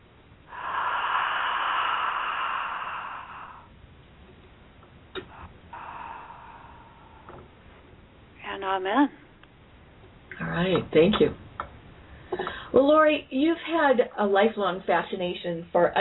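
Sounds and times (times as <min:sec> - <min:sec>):
deep breath during a guided breathing exercise: 0:00.5 - 0:03.7, 0:05.2 - 0:07.8
speech: 0:08.6 - 0:09.2, 0:10.6 - 0:11.4, 0:12.8 - 0:15.9.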